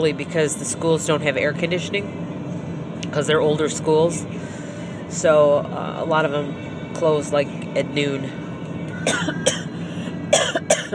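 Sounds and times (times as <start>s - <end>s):
speech: 0.0s - 2.4s, 3.1s - 4.5s, 5.1s - 8.4s, 9.0s - 9.6s
harsh coughing from a person with a worsening cough on a hot day: 9.0s - 9.7s, 10.3s - 10.9s.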